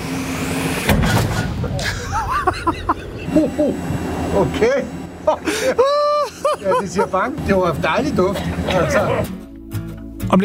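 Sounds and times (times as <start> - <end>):
tank gun firing a shot: 0.8 - 2.0
laughter: 1.4 - 9.3
speech: 3.4 - 5.9, 6.5 - 9.4, 10.3 - 10.4.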